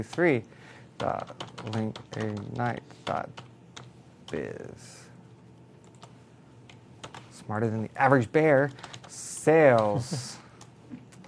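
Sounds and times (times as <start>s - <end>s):
speech: 0.0s - 3.5s, 4.3s - 5.0s, 7.5s - 10.4s
computer keyboard typing while entering text: 1.0s - 4.5s, 5.8s - 7.4s, 8.6s - 9.9s.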